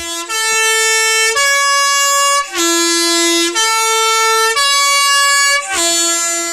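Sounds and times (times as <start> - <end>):
Swiss yellow postbus horn playing a three-note melody: 0.0 - 6.5.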